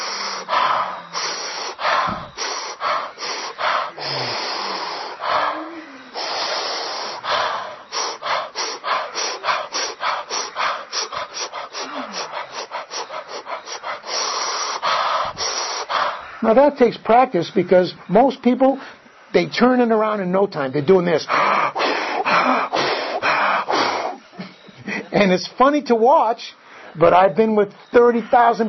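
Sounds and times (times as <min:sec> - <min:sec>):
person inhaling and exhaling in a breathing exercise: 0:00.0 - 0:16.7, 0:21.2 - 0:25.1
fast rhythmic short breath puffs: 0:00.0 - 0:20.1, 0:20.9 - 0:28.6
speech: 0:16.5 - 0:21.4, 0:25.2 - 0:28.6.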